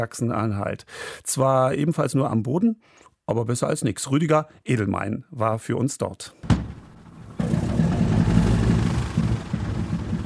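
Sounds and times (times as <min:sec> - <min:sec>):
speech: 0:00.0 - 0:06.7
three nine-cylinder 650 hp radial engines on a Junkers aircraft accelerating: 0:07.2 - 0:10.2.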